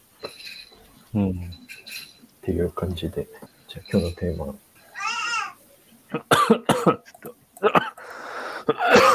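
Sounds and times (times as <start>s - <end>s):
speech: 1.1s - 1.6s, 2.4s - 4.6s, 6.1s - 7.9s
person coughing: 6.1s - 8.0s, 8.7s - 9.1s.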